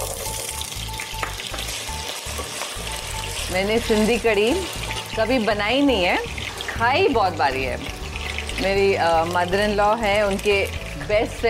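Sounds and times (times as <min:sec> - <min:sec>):
potatoes frying in hot oil: 0:00.0 - 0:11.4
speech: 0:03.5 - 0:08.0, 0:08.6 - 0:11.4.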